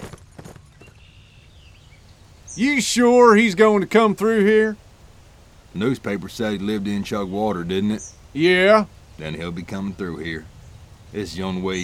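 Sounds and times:
horse's hooves as a rider sets off on horseback: 0.0s - 1.3s
speech: 2.6s - 4.8s, 5.8s - 10.5s, 11.1s - 11.8s.

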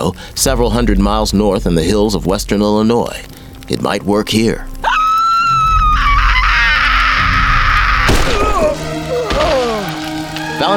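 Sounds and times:
speech: 0.0s - 4.7s, 10.6s - 10.7s
man imitating a Reaper monster scream: 4.8s - 9.9s.

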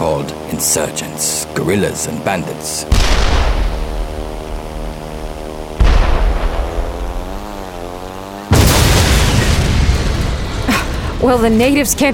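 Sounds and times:
aircraft engine droning: 0.0s - 12.1s
speech: 0.2s - 3.7s, 11.2s - 12.1s
shoulder-launched Russian-made portable air-defense missile exploding: 2.9s - 5.0s, 5.8s - 7.6s, 8.5s - 11.0s.

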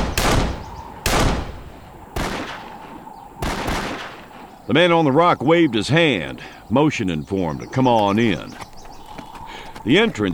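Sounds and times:
pistol shots fired into the air: 0.0s - 4.5s
speech: 4.7s - 8.7s, 9.8s - 10.3s.

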